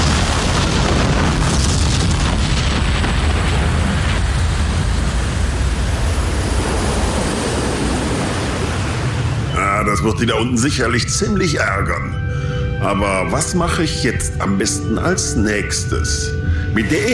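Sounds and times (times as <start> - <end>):
huge spaceship explosion: 0.0 - 10.1
speech: 10.0 - 17.1.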